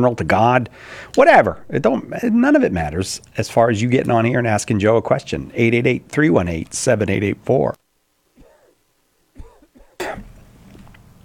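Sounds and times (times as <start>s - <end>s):
speech: 0.0s - 7.8s
man coughing heavily: 8.4s - 8.8s, 9.4s - 10.4s.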